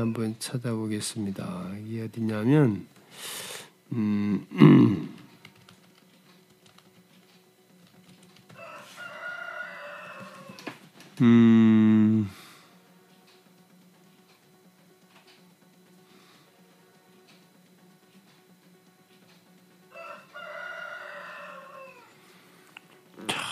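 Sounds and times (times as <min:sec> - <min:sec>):
speech: 0:00.0 - 0:05.2, 0:11.2 - 0:12.4
quiet hum: 0:00.0 - 0:23.5
rooster crowing: 0:08.6 - 0:10.8, 0:19.9 - 0:22.3.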